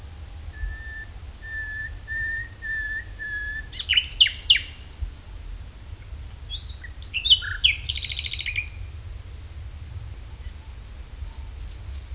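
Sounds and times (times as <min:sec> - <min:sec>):
nightingale Luscinia megarhynchos whistling call: 0:00.5 - 0:04.9, 0:06.5 - 0:08.9, 0:10.9 - 0:12.1.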